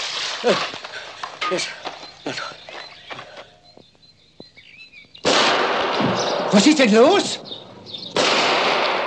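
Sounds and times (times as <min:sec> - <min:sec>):
speech: 0:00.4 - 0:00.9, 0:01.5 - 0:02.6, 0:06.5 - 0:07.5
gunshots from poachers in the forest: 0:05.2 - 0:07.2, 0:08.1 - 0:09.0.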